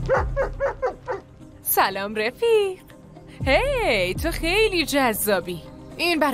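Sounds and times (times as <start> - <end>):
police dog barking at a bag: 0.1 - 1.3
speech: 1.8 - 2.9, 3.4 - 6.3.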